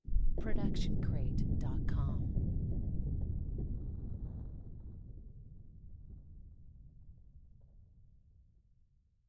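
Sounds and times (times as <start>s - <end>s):
deep and far explosion: 0.2s - 7.5s.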